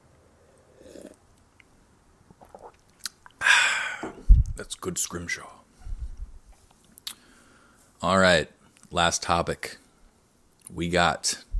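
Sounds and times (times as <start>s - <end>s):
person sipping a drink: 0.4s - 1.2s, 2.3s - 4.2s, 6.9s - 7.4s
small slurping sounds: 0.8s - 1.2s, 2.3s - 3.4s
faint wet mouth clicks: 2.3s - 3.4s, 6.8s - 7.3s
breathy exhale after swallowing: 3.4s - 4.2s
speech: 4.8s - 5.6s, 8.0s - 9.8s, 10.7s - 11.4s.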